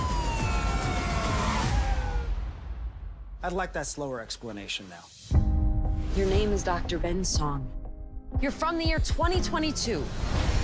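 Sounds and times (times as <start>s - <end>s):
police car sirens during car chase: 0.0s - 2.4s
speech: 3.4s - 5.2s, 6.2s - 7.8s, 8.4s - 10.5s.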